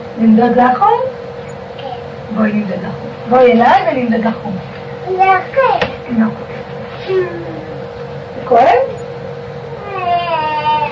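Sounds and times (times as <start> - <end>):
speech: 0.2 - 1.2, 2.3 - 7.5, 8.5 - 8.9
small girl crying while having her temperature taken: 9.8 - 10.8.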